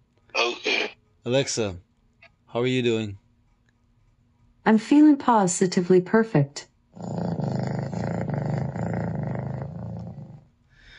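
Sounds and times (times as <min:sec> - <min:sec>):
speech: 0:01.2 - 0:01.9, 0:02.5 - 0:03.2, 0:04.6 - 0:07.3
big cat roar-growl played by a smart speaker: 0:07.0 - 0:10.4.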